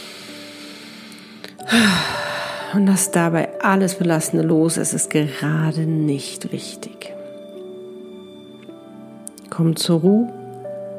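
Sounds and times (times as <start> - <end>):
deep exhale through the mouth: 0.0 - 2.7
speech: 1.6 - 7.2, 9.6 - 10.4.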